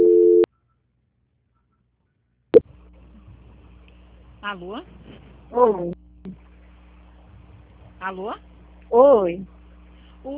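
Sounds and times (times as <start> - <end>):
telephone line beep during a call transfer: 0.0 - 0.5
speech: 4.4 - 6.0, 8.0 - 9.6.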